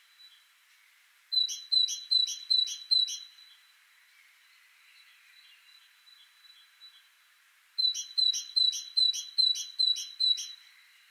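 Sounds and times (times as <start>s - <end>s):
great tit Parus major calling: 1.4s - 3.3s, 7.8s - 10.6s.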